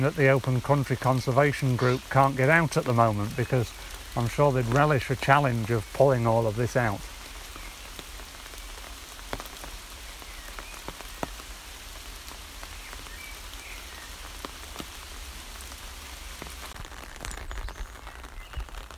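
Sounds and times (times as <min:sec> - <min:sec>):
speech: 0:00.0 - 0:07.1
pouring rain: 0:00.0 - 0:18.9.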